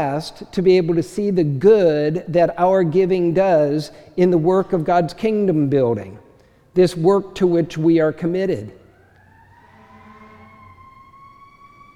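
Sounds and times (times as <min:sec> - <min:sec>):
speech: 0:00.0 - 0:06.2, 0:06.8 - 0:08.8
emergency vehicle siren wailing: 0:08.2 - 0:11.9.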